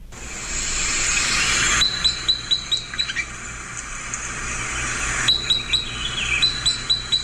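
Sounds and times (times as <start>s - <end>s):
broad rushing hiss: 0.0s - 5.4s
Red Crossbill Sitka spruce type 10 flight calls: 0.3s - 7.2s.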